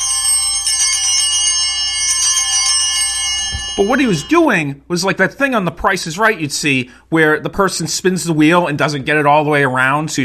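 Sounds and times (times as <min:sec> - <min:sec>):
bells being shaken vigorously: 0:00.0 - 0:04.6
speech: 0:03.8 - 0:10.2.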